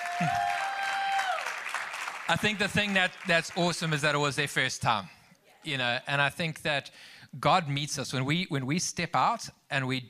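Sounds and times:
audience applause: 0.0s - 4.0s
speech: 2.3s - 10.0s.

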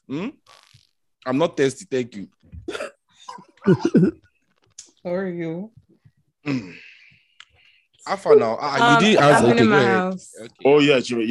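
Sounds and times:
speech: 0.1s - 0.5s, 1.2s - 2.6s, 3.6s - 4.3s, 5.0s - 5.8s, 6.4s - 6.8s, 8.0s - 11.2s
person coughing harsh throaty coughs: 2.7s - 4.2s.

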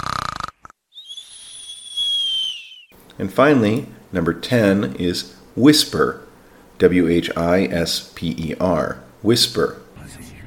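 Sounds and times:
voice imitating snoring: 0.0s - 0.8s
speech: 3.2s - 10.3s.

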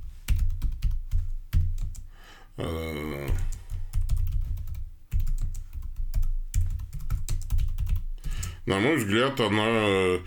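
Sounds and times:
typing on a Bluetooth computer keyboard: 0.3s - 2.1s, 3.4s - 8.6s
speech: 2.6s - 3.2s, 8.7s - 10.2s.

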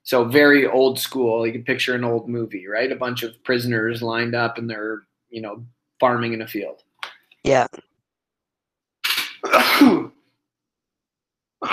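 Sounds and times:
speech: 0.1s - 6.8s, 7.4s - 7.9s, 9.4s - 10.2s
person sneezing during an online group call: 9.0s - 10.2s.

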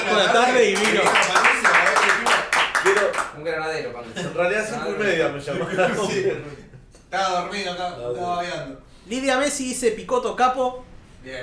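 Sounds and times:
group applauding a guest: 0.0s - 3.4s
speech: 0.2s - 1.6s, 3.4s - 11.4s.

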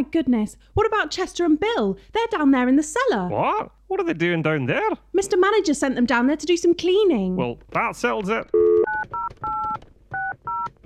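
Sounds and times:
speech: 0.0s - 9.5s
touch-tone beeps of a phone number being dialed: 8.5s - 10.8s.

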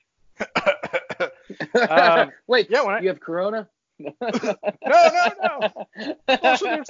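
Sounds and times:
harsh coughs: 0.4s - 2.2s, 4.3s - 5.7s
laughter: 0.4s - 2.3s, 4.0s - 6.8s
speech: 1.7s - 6.8s.

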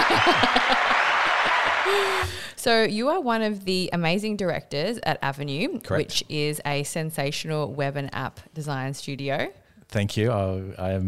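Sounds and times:
laughter: 0.0s - 2.3s
dense applause of many hands clapping: 0.0s - 2.4s
speech: 1.9s - 11.0s.

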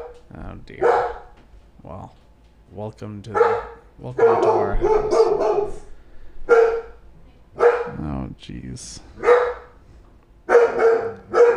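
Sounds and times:
dog barking: 0.0s - 1.4s, 3.3s - 5.9s, 6.5s - 7.0s, 7.6s - 8.0s, 9.2s - 9.8s, 10.5s - 11.5s
speech: 0.3s - 1.2s, 1.8s - 5.9s, 8.4s - 9.3s.

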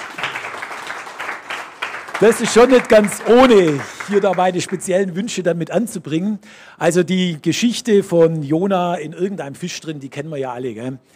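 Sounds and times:
sharp claps: 0.0s - 5.0s
room full of people applauding: 0.0s - 5.1s
speech: 2.2s - 11.1s.

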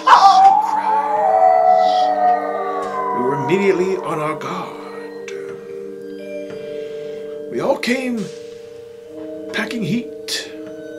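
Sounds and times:
distant creature howl: 0.0s - 5.4s
speech: 3.5s - 4.7s, 7.8s - 8.4s, 9.6s - 10.1s.

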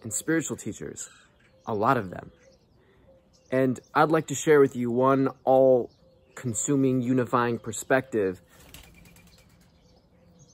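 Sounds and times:
speech: 0.0s - 2.4s, 3.5s - 8.6s
bird wings flapping as it flies away: 8.4s - 9.8s.

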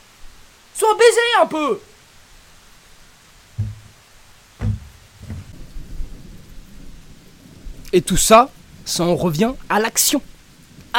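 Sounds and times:
steady rain falling outdoors: 0.0s - 10.9s
speech: 0.8s - 1.9s, 7.9s - 10.3s
deep thunder: 3.6s - 9.0s.

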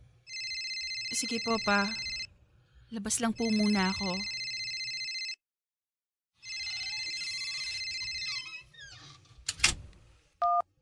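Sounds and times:
phone ringing with a steady electronic tone: 0.3s - 2.3s, 3.4s - 5.4s, 6.4s - 8.5s
speech: 1.1s - 2.1s, 2.9s - 4.4s.

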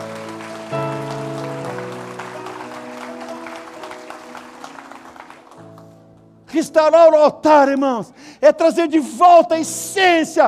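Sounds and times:
church audience applauding: 0.0s - 6.0s
held keyboard chords: 0.0s - 7.4s
speech: 6.5s - 10.4s.

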